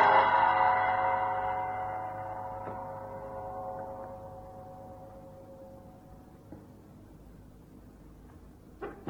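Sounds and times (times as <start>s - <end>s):
deep gong stroke ringing inside a temple building: 0.0s - 6.8s.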